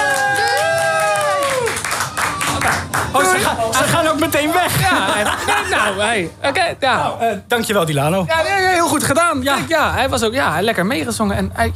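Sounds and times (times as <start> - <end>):
audience cheering and whooping: 0.0 - 3.4
audience clapping: 0.0 - 4.2
speech: 3.5 - 11.7
laughter: 4.4 - 6.3.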